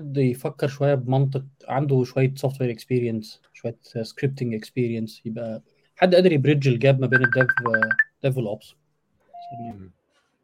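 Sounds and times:
speech: 0.0s - 8.8s, 9.4s - 10.0s
phone notification beep: 7.1s - 8.1s.

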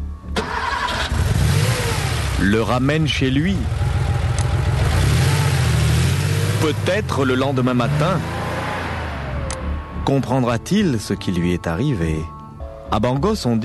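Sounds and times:
car engine cranking, revving and roaring as the car pulls away: 0.4s - 10.1s
speech: 2.4s - 3.8s, 6.6s - 8.4s, 10.1s - 12.3s, 12.9s - 13.6s.

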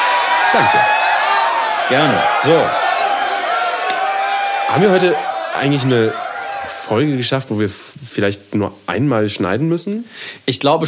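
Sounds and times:
crowd clapping: 0.0s - 7.4s
speech: 0.5s - 1.0s, 1.9s - 2.8s, 4.7s - 6.2s, 6.9s - 10.8s.

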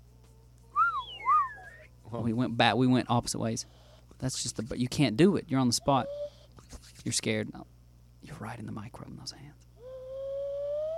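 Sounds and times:
faint low hum: 0.0s - 10.9s
slide whistle sound effect: 0.7s - 1.9s, 9.8s - 10.9s
speech: 2.1s - 9.7s.

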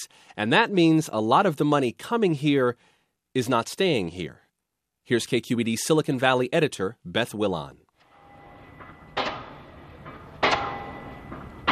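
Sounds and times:
speech: 0.0s - 4.4s, 5.1s - 7.8s
low construction-site rumble: 8.1s - 11.7s
heavy metallic pile-driver strikes driving steel piles into ground: 8.4s - 11.7s.

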